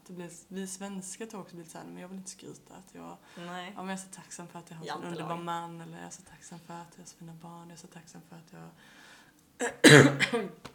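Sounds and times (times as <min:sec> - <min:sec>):
speech: 0:00.1 - 0:10.7
harsh coughs: 0:09.6 - 0:10.6
throat clearing: 0:09.6 - 0:10.6.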